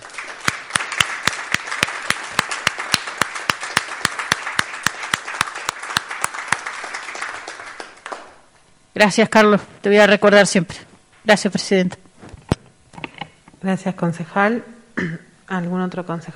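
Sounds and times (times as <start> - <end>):
group applauding: 0.0 - 8.4
single sharp clapper: 0.0 - 8.4
speech: 9.0 - 12.0, 13.6 - 16.3.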